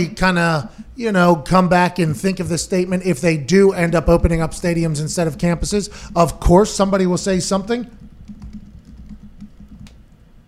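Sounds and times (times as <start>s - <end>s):
speech: 0.0s - 8.0s
rapid typing on a computer keyboard: 6.5s - 10.2s.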